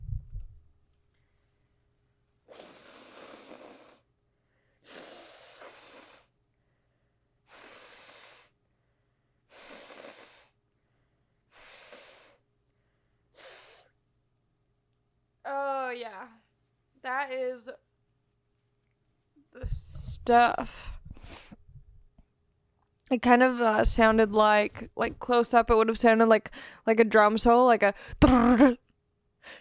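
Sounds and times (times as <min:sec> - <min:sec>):
person blowing nose very heavily: 0:02.5 - 0:04.1, 0:04.8 - 0:06.4, 0:07.4 - 0:08.6, 0:09.5 - 0:10.6, 0:11.5 - 0:12.4, 0:13.4 - 0:14.0
speech: 0:17.2 - 0:17.8, 0:20.3 - 0:20.9, 0:23.1 - 0:28.8.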